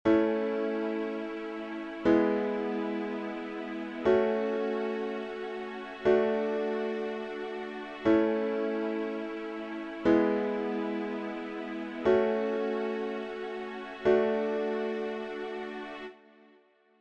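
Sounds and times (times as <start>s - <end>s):
progressive music: 0.1s - 16.2s.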